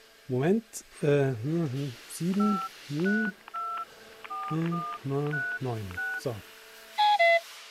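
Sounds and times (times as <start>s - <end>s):
speech: 0.3s - 3.4s, 4.5s - 6.5s
synthetic mobile phone ringtone with two melodic notes and a beep: 2.3s - 6.2s, 7.0s - 7.4s.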